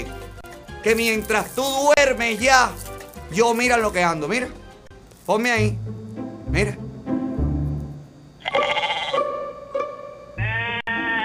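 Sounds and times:
speech: 0.8 - 4.6, 5.3 - 6.8
female goat bleating loudly: 8.4 - 9.3, 10.4 - 11.2.

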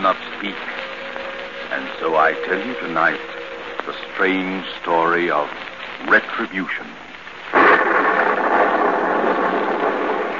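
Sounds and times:
speech: 0.0 - 0.8, 1.7 - 7.0
heavy rain over a muddy road by a small stone courthouse in a southern village: 0.0 - 10.3
rumbling thunder of a lightning storm: 7.5 - 10.3.

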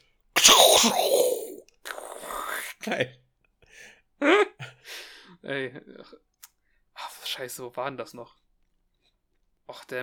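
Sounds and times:
voice imitating a whipped cream can spraying: 0.4 - 2.8
speech: 0.8 - 1.3, 2.8 - 3.2, 3.8 - 4.7, 5.4 - 6.3, 7.3 - 8.4, 9.7 - 10.0.

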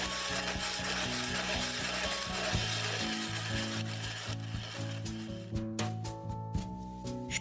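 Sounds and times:
ice shaver scraping and grinding ice for shaved-ice dessert: 0.0 - 5.6
soft music: 0.0 - 7.3.

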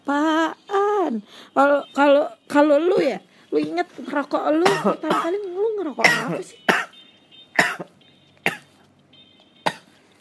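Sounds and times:
speech: 0.1 - 6.8
harsh dry coughs: 4.6 - 5.4, 6.0 - 7.0, 7.6 - 8.8, 9.6 - 10.0.

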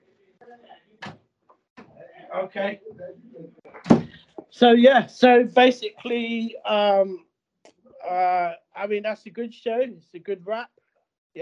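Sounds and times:
voices murmuring: 1.8 - 7.2, 8.0 - 10.6
speech: 2.3 - 7.3, 8.1 - 10.8
door swinging shut with a solid thud: 3.8 - 4.3.

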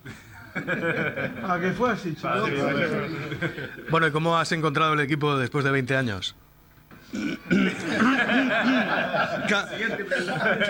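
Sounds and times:
laughter: 0.0 - 4.0, 7.5 - 10.6
speech: 0.7 - 6.4, 7.1 - 10.6
person clearing throat with rasping grunts: 7.0 - 8.8.

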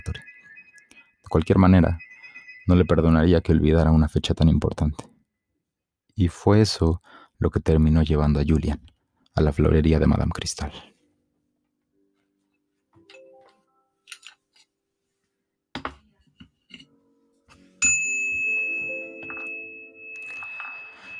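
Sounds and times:
small shop door bell chiming: 0.0 - 4.0, 17.8 - 21.1
speech: 1.3 - 2.0, 2.7 - 5.1, 6.2 - 10.9.

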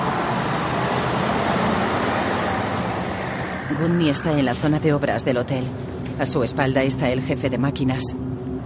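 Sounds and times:
bus driving along a street: 0.0 - 6.2
speech: 3.7 - 8.5.

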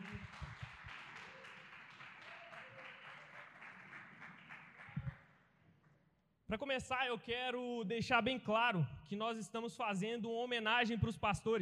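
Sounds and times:
audience applause in a large room: 0.0 - 5.2
speech: 6.5 - 11.5.

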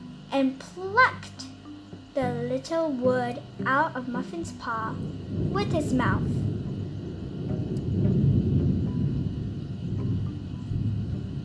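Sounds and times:
speech: 0.3 - 1.4, 2.2 - 6.5
deep continuous thunder rumbling: 4.0 - 11.4.

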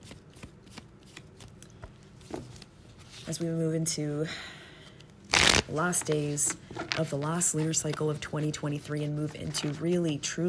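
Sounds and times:
tarot cards being shuffled by hand: 0.0 - 3.5, 5.0 - 8.4, 9.2 - 10.0
speech: 3.3 - 4.6, 5.7 - 10.4.

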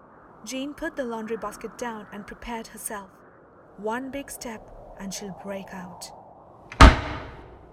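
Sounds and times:
speech: 0.4 - 3.2, 3.8 - 6.2
door being pushed hard and slamming: 6.7 - 7.4.

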